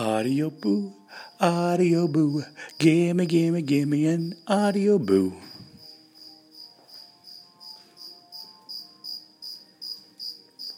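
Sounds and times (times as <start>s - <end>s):
cricket chirping: 0.0s - 10.7s
speech: 0.1s - 5.5s.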